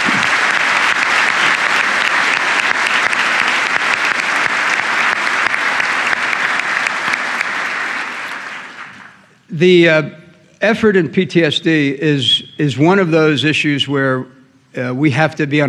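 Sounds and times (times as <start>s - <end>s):
large audience applauding: 0.0s - 9.3s
speech: 9.6s - 15.6s.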